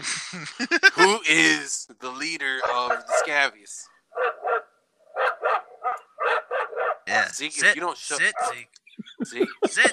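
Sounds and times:
laughter: 0.0s - 1.4s, 8.4s - 9.9s
speech: 0.3s - 4.3s, 7.1s - 9.9s
dog barking: 2.6s - 3.4s, 4.1s - 7.1s, 8.2s - 8.6s.

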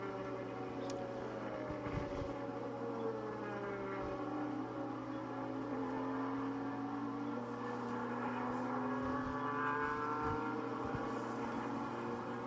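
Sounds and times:
race car engines roaring and accelerating on a racetrack: 0.0s - 12.4s.

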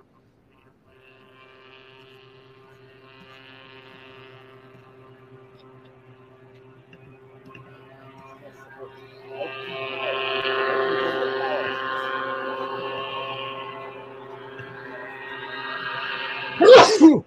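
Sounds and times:
low steady motor-like hum: 0.0s - 17.2s
loud sneeze: 16.6s - 17.2s.

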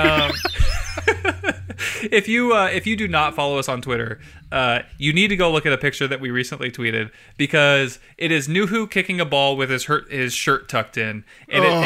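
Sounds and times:
person mimicking a bird's tweet with chirpy vocal bursts: 0.0s - 0.7s
laughter: 0.0s - 2.1s
speech: 2.1s - 11.8s.

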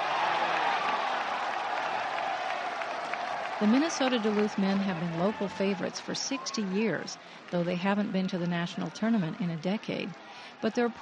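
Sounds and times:
large indoor hockey arena crowd cheering and applauding: 0.0s - 11.0s
speech: 3.6s - 11.0s.

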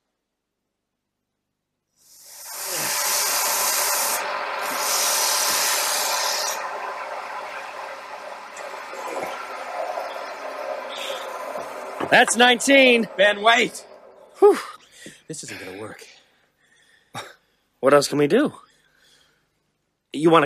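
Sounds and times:
wood lathe turning ash stove wood in a basement: 2.1s - 15.1s
speech: 12.1s - 16.1s, 17.2s - 18.6s, 20.1s - 20.4s.

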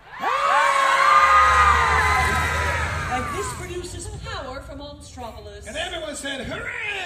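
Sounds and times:
crowd of children screaming: 0.0s - 3.8s.

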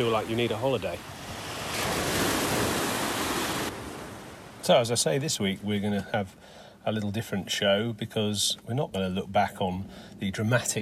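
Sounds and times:
speech: 0.0s - 1.2s, 4.6s - 10.8s
sea waves rushing onto the shore: 0.0s - 5.4s.

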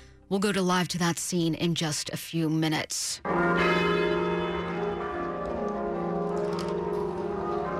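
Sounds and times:
speech: 0.3s - 3.9s
church bells tolling in a cathedral: 3.2s - 7.7s.

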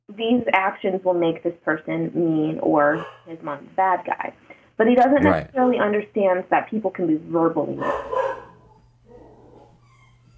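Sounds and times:
speech: 0.2s - 8.3s
dog in a dorm room barking at delivery person: 2.9s - 3.2s, 7.8s - 8.7s.

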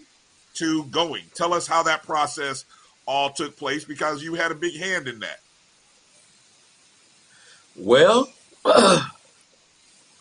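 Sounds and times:
speech: 0.6s - 5.4s, 7.8s - 9.1s
person coughing: 8.7s - 9.2s.

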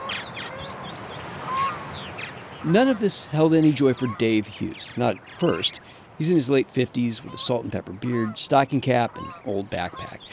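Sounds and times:
birds calling outdoors by Brush Creek in Kansas City: 0.0s - 10.3s
steady wash of noise: 0.0s - 10.3s
speech: 2.6s - 10.3s
nasal duck quacks and honks: 7.2s - 10.3s.

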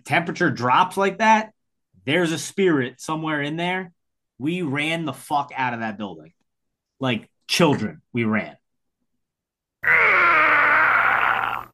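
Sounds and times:
speech: 0.0s - 6.4s, 7.0s - 8.6s
strained groaning cry vocal effect: 9.8s - 11.7s.

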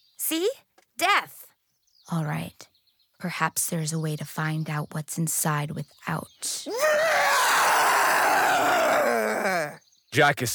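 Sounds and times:
speech: 0.3s - 1.4s, 2.1s - 2.6s, 3.2s - 7.3s, 10.1s - 10.5s
several girls screaming in surprise: 6.7s - 9.8s.

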